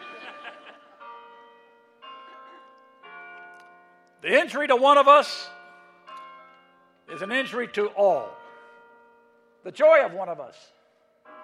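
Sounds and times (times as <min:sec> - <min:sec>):
crowd laughing: 0:00.0 - 0:01.2
large bells ringing: 0:00.0 - 0:11.4
speech: 0:04.2 - 0:05.6, 0:07.2 - 0:08.4, 0:09.6 - 0:10.8.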